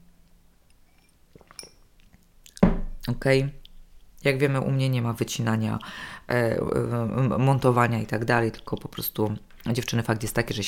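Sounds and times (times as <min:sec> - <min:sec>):
person sipping and swallowing water: 0:01.3 - 0:02.6
speech: 0:03.1 - 0:03.6, 0:04.2 - 0:10.6.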